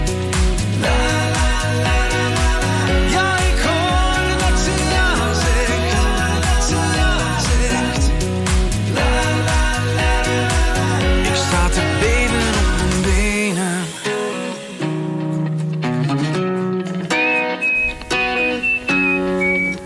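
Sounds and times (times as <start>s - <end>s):
busy instrumental track: 0.0s - 19.8s
thin high whistled melody: 17.1s - 19.8s.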